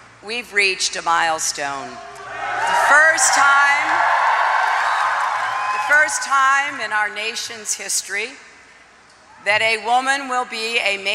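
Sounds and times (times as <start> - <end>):
speech: 0.2 - 4.1, 5.9 - 8.5, 9.4 - 11.1
large crowd cheering with whoops and shouts: 2.0 - 7.2
dense wash of crowd clapping: 2.9 - 6.2.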